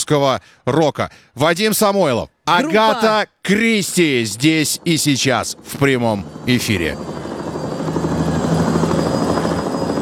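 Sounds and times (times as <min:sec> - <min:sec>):
speech: 0:00.1 - 0:07.3
helicopter rotor blades chopping at a summer concert: 0:03.8 - 0:10.0.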